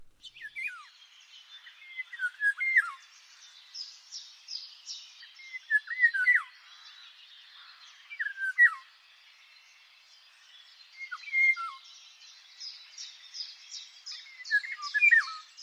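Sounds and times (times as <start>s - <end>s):
other birds chirping and twittering: 0.0s - 15.6s
Eurasian golden oriole singing fluty whistled phrases: 0.2s - 1.0s, 1.6s - 3.0s, 5.3s - 6.5s, 8.1s - 8.9s, 11.0s - 11.8s, 14.1s - 15.5s.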